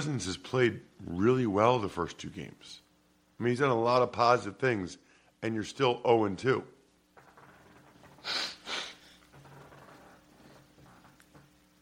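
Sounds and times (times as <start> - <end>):
speech: 0.0 - 2.8, 3.4 - 6.8, 8.2 - 8.5
person blowing their nose: 8.1 - 9.3.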